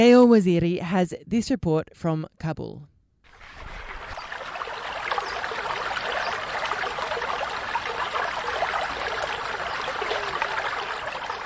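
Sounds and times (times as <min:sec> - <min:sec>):
speech: 0:00.0 - 0:02.9
flowing river water rushing: 0:03.3 - 0:11.4.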